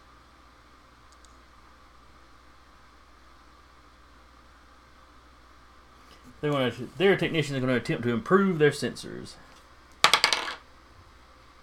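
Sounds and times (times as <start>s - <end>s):
speech: 6.4s - 9.5s
dice clattering across a hard surface: 10.0s - 10.6s.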